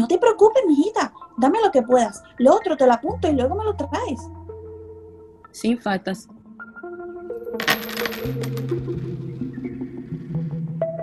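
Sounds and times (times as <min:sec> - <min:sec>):
speech: 0:00.1 - 0:04.4, 0:05.6 - 0:06.4, 0:07.5 - 0:08.8
coins clinking and jingling as payment: 0:07.6 - 0:08.9.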